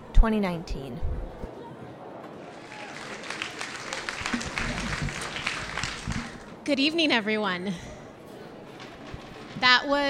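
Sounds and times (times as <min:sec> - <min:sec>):
speech: 0:00.2 - 0:01.5, 0:06.7 - 0:07.9, 0:09.6 - 0:10.0
live audience applause at a talk: 0:02.4 - 0:06.6.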